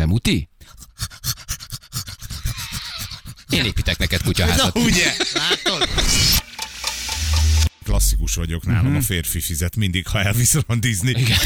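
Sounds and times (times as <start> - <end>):
speech: 0.1 - 1.4, 3.5 - 6.5, 7.9 - 11.4
human voice imitating an overheated pug panting: 0.6 - 4.6
laughter: 2.6 - 6.4, 11.0 - 11.4.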